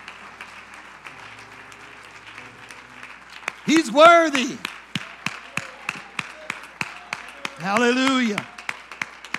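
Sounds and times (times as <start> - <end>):
church audience clapping rhythmically in praise: 0.0 - 9.3
murmur of voices: 3.6 - 8.9
speech: 3.7 - 4.7, 7.6 - 8.5.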